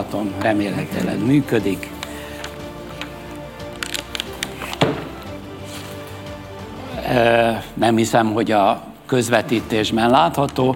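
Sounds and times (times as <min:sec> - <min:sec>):
speech: 0:00.1 - 0:02.0, 0:07.1 - 0:10.7
embossing seal pressing an emblem onto paper: 0:01.9 - 0:05.2.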